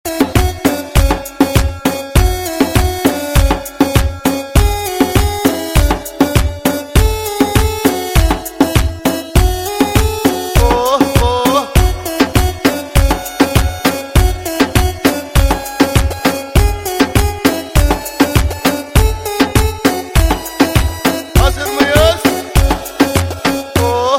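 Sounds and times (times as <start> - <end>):
Arabic beat remix ringtone: 0.1 - 24.1.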